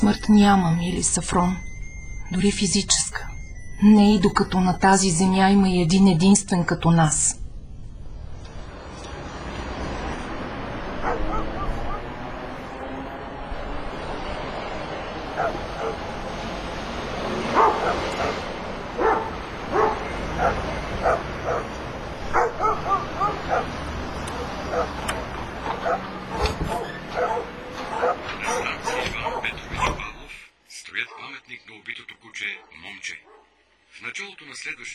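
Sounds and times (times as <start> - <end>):
speech: 0.0 - 1.7, 2.3 - 7.4
pack of dogs in a city barking and yipping: 10.9 - 12.6, 15.2 - 16.4, 17.3 - 29.6, 32.7 - 33.6.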